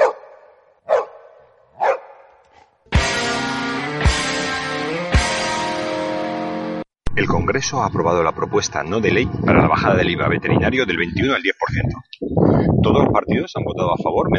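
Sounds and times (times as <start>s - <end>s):
dog barking: 0.0s - 2.7s
loud sustained music: 2.9s - 6.9s
speech: 7.2s - 14.3s.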